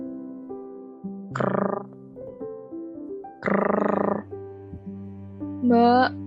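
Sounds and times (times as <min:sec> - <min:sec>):
speech: 0:01.3 - 0:02.0, 0:03.4 - 0:03.9, 0:05.7 - 0:06.2
bamboo creaking: 0:01.4 - 0:01.9, 0:03.4 - 0:04.2.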